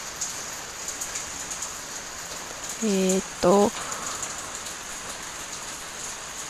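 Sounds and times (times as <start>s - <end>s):
steady rain falling outside: 0.0s - 6.4s
person saying hesitant filler words: 2.8s - 3.9s
speech: 2.8s - 3.9s.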